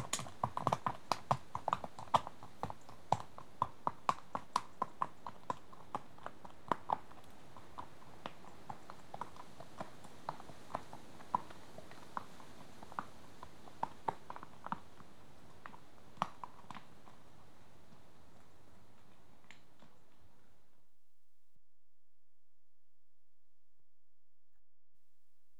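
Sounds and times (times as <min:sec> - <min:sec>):
horse hooves clopping at a walk on a rough track: 0:00.0 - 0:20.5.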